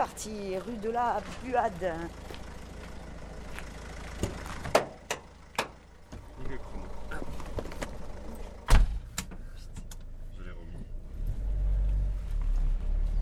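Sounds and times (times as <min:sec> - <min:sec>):
truck engine rumble of bulky waste collection truck: 0:00.0 - 0:13.2
speech: 0:00.2 - 0:02.3
truck door shutting clunks: 0:04.2 - 0:11.4
door slam: 0:08.6 - 0:09.4.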